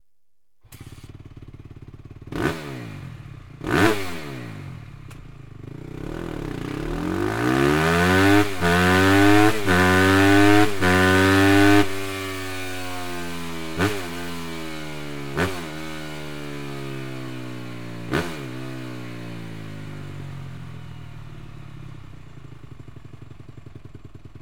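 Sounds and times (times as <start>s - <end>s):
slip-on exhaust with insert: 0.6s - 14.2s.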